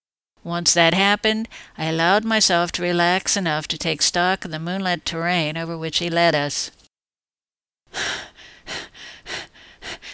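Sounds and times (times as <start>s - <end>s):
speech: 0.4s - 6.8s, 7.9s - 8.8s
person panting heavily while running along a road at night: 7.9s - 10.1s.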